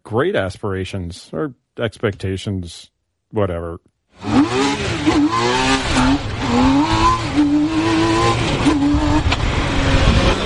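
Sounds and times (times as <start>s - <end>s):
speech: 0.1s - 6.7s
three-wheeled car engine accelerating hard through gear changes: 4.2s - 10.4s.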